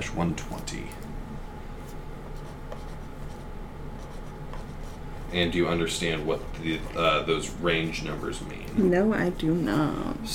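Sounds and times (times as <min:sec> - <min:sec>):
speech: 0:00.0 - 0:01.2, 0:05.3 - 0:10.3
pen or pencil scratching on paper: 0:01.8 - 0:08.5.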